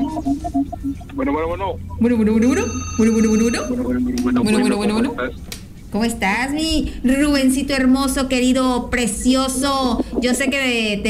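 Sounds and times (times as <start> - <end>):
telephone ringing in short electronic pulses: 0.0 - 5.1
low steady hum: 0.0 - 11.0
speech: 0.2 - 11.0.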